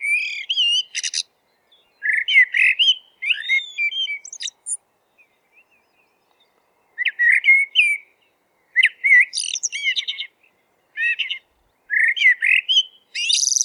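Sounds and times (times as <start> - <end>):
Eurasian blackbird singing: 0.0 - 13.6.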